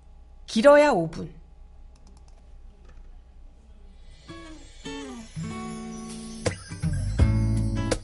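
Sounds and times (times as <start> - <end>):
speech: 0.5 - 1.4
instrumental pop song intro with sustained melodic notes: 4.3 - 8.0
bass line: 5.0 - 8.0.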